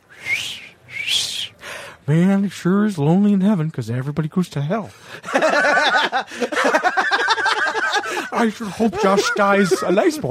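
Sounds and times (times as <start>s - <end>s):
person whistling imitating a parrot: 0.1s - 1.6s
speech: 2.1s - 7.0s, 8.1s - 10.2s
laughter: 5.1s - 10.2s.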